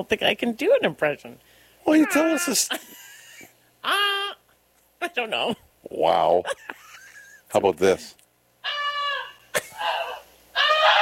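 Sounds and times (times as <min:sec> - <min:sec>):
speech: 0:00.0 - 0:03.0, 0:03.8 - 0:04.4, 0:05.0 - 0:06.8, 0:07.5 - 0:08.8
goose honking: 0:08.6 - 0:10.9.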